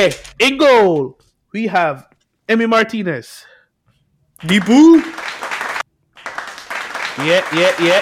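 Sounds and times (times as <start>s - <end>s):
speech: 0.0s - 3.5s, 4.4s - 5.2s, 7.2s - 8.0s
few people clapping: 4.4s - 8.0s.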